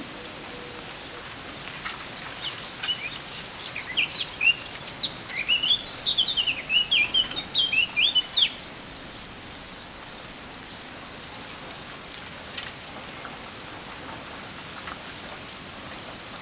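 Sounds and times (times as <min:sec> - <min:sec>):
Eurasian blackcap Sylvia atricapilla song: 0:02.2 - 0:11.6.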